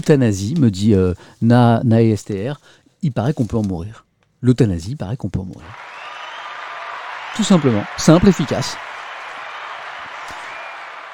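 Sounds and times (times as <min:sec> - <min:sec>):
speech: 0:00.0 - 0:06.0, 0:07.3 - 0:08.9
crowd applauding: 0:05.7 - 0:11.1.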